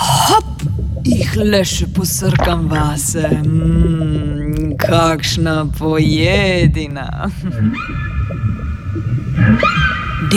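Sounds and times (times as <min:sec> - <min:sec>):
deep underwater rumble: 0:00.0 - 0:10.3
speech: 0:01.4 - 0:08.1
female whale call with tonal moans: 0:07.7 - 0:10.3.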